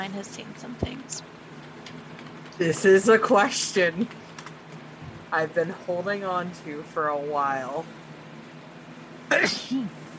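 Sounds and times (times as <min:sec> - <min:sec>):
speech: 0:00.0 - 0:01.6, 0:02.6 - 0:04.2, 0:05.3 - 0:08.0, 0:09.3 - 0:10.0
quiet room hum: 0:00.0 - 0:10.1
person sneezing: 0:09.3 - 0:09.9.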